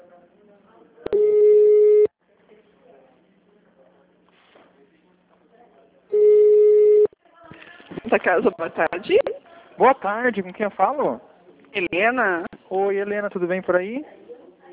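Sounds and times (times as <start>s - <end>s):
telephone tones during a call transfer on a switchboard line: 1.1s - 2.1s, 6.1s - 7.1s
speech: 8.1s - 14.2s.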